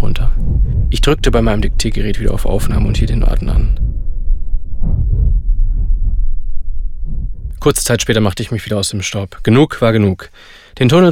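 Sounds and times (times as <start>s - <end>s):
distorted unnatural heartbeat thudding: 0.0s - 8.4s
speech: 1.0s - 3.9s, 7.6s - 11.1s.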